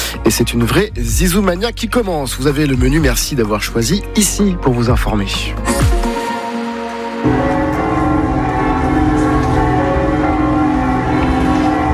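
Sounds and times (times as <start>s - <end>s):
speech: 0.2s - 6.0s
church bells of village churches pealing: 6.4s - 11.9s.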